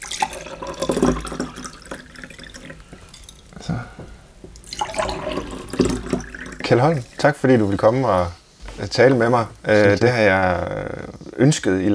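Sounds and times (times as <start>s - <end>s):
water pouring into drinking glasses: 0.0s - 3.5s, 4.6s - 7.8s
speech: 6.7s - 11.9s.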